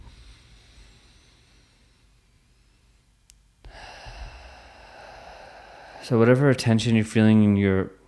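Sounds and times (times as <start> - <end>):
slow inhale through the nose: 0.0 - 6.3
speech: 6.1 - 8.0.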